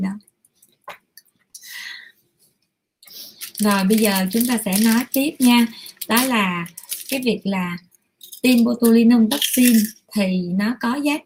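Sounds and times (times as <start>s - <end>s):
child's snack wrapper rustling: 3.1s - 7.4s, 8.2s - 10.0s
speech: 3.6s - 11.2s.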